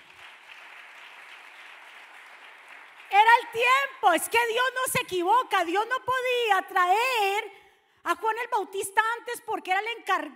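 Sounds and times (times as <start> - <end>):
large audience applauding loudly: 0.0 - 3.6
speech: 3.4 - 10.3.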